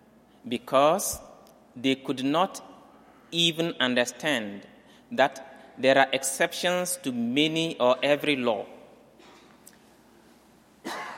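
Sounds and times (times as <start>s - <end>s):
speech: 0.4s - 2.7s, 3.3s - 8.8s
person coughing while giving a talk on scripture: 9.2s - 9.6s, 10.8s - 11.1s.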